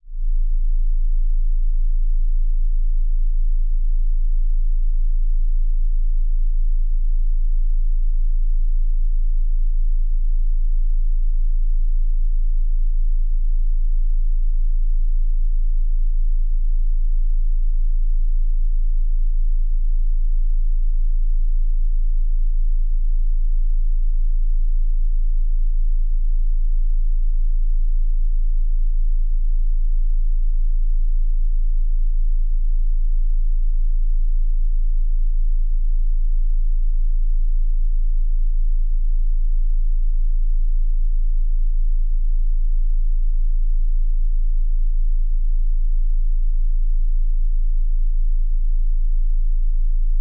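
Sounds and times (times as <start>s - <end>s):
28Hz tone: 0.0s - 50.1s.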